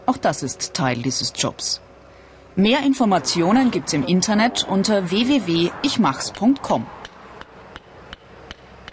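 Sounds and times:
low hum: 0.0s - 8.9s
speech: 0.1s - 1.9s, 2.6s - 7.0s
hammer tapping on a concrete bridge surface: 7.0s - 8.9s.

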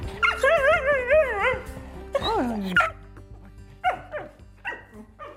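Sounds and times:
dog whining: 0.2s - 2.9s
dog barking and yipping: 0.2s - 3.0s, 3.8s - 5.3s.

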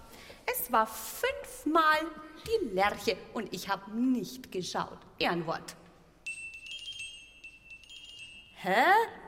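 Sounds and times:
speech: 0.5s - 5.8s, 8.6s - 9.2s
glockenspiel playing a finch birdsong motif: 6.3s - 8.6s.

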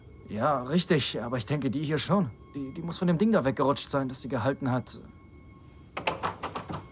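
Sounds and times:
speech: 0.3s - 5.2s
locked door jiggled and tugged, rattling: 6.0s - 6.8s.

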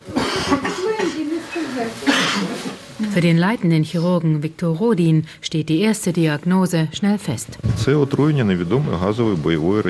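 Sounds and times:
soldier with breathing difficulty coughing heavily after inhaling gas warfare agent: 0.1s - 1.2s, 2.0s - 2.6s
speech: 1.8s - 9.8s.

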